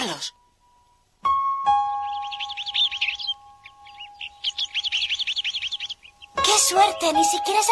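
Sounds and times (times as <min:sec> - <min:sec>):
birds chirping near a flycatcher nest: 0:00.0 - 0:07.7
speech: 0:06.7 - 0:07.7.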